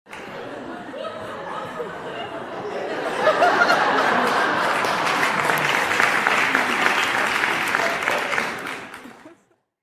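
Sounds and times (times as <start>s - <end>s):
audience crowd clapping: 0.1s - 0.5s, 3.2s - 9.5s
audience crowd laughing: 0.1s - 9.6s.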